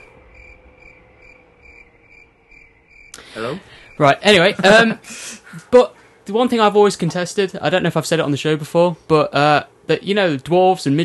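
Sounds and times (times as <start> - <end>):
crickets chirping: 0.0 - 4.6
low hum: 0.0 - 11.0
speech: 3.4 - 11.0.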